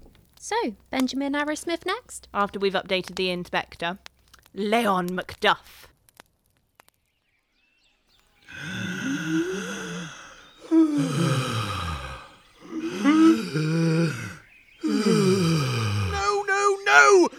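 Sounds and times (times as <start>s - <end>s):
speech: 0.4s - 5.9s
exaggerated voiced in-and-out breaths: 8.5s - 16.4s.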